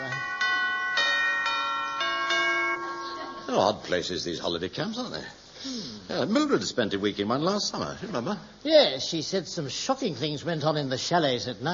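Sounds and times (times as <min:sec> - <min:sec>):
doorbell chiming bright ringing tones: 0:00.0 - 0:03.7
speech: 0:03.5 - 0:11.7.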